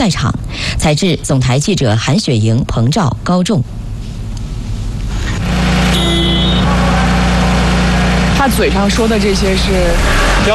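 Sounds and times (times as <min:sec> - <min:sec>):
speech: 0:00.0 - 0:03.8, 0:08.4 - 0:10.5
high whine: 0:04.4 - 0:10.5
heavy truck diesel engine starting and idling: 0:05.0 - 0:10.5.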